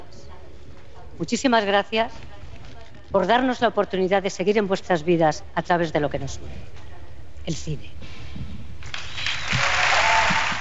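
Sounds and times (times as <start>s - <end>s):
speech: 1.2s - 2.4s, 3.1s - 6.8s, 7.4s - 8.5s
audience applause at film awards gala: 8.9s - 10.5s.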